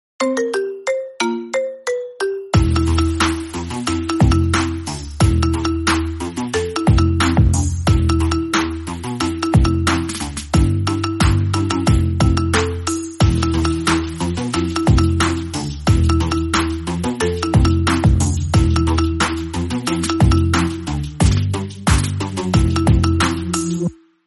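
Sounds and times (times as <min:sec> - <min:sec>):
marimba instrumental: 0:00.2 - 0:24.0.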